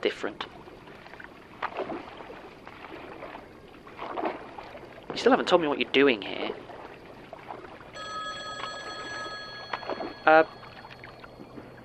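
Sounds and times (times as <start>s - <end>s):
speech: 0.0s - 0.6s, 5.2s - 6.6s, 10.3s - 10.6s
payphone ringing with high electronic tone: 8.0s - 11.8s.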